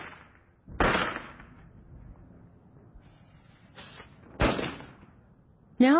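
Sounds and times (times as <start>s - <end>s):
firecracker bangs: 0.0s - 1.6s, 3.7s - 5.2s
speech: 5.8s - 5.9s.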